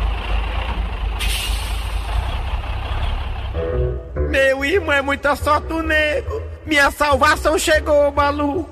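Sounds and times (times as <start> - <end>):
heavy truck engine rumbling and idling: 0.0 - 8.7
truck air brakes hissing: 1.2 - 2.3
speech: 4.6 - 8.7.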